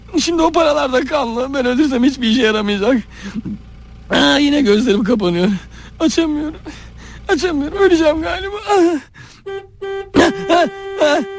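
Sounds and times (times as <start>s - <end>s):
speech: 0.2s - 11.3s
car horns honking in traffic: 5.9s - 11.3s.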